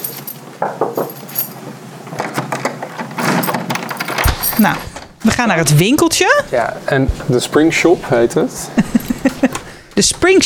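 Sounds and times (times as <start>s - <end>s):
keys jangling: 0.0s - 1.6s, 3.2s - 4.8s, 9.0s - 9.3s
metal clinks: 0.0s - 1.6s, 3.2s - 4.8s
shop door rattling and knocking as it is unlocked and moved: 3.2s - 4.8s
speech: 4.6s - 10.4s.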